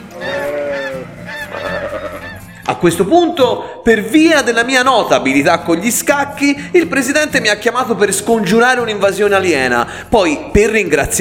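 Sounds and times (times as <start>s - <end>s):
flock of ducks honking outdoors beside sheep: 0.0s - 2.6s
speech: 2.7s - 11.2s.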